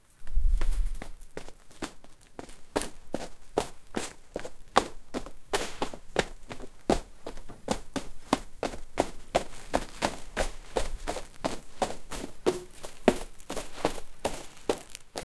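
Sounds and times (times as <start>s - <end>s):
skeleton running: 1.0s - 15.2s.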